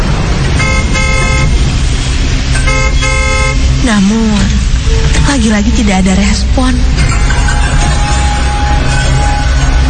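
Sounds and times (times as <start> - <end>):
steady rumble of rain or engine noise: 0.0 - 9.8
car horn honking in short blasts: 0.6 - 1.6, 2.6 - 3.7
speech: 5.3 - 7.4.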